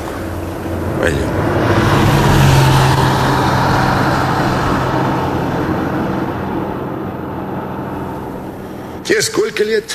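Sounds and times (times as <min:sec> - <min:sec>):
car driving past: 0:00.0 - 0:09.1
speech: 0:01.0 - 0:01.6, 0:09.1 - 0:09.9.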